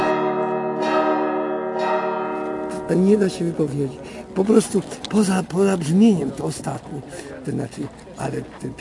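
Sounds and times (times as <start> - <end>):
monastery church bells ringing in a layered harmonic peal: 0.0 - 6.0
speech: 2.9 - 8.8.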